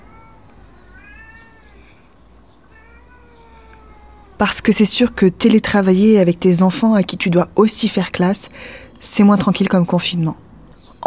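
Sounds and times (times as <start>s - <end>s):
cat meowing: 0.0s - 4.4s
low hum: 0.0s - 11.0s
speech: 4.4s - 10.4s.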